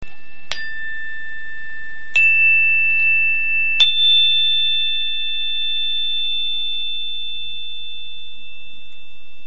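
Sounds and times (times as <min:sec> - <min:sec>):
chime bar: 0:00.0 - 0:09.4.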